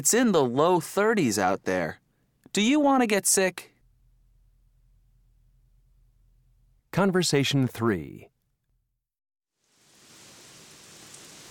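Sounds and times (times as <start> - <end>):
speech: 0.0 - 2.0, 2.6 - 3.7, 6.9 - 8.3
dense continuous downpour of rain: 9.7 - 11.4.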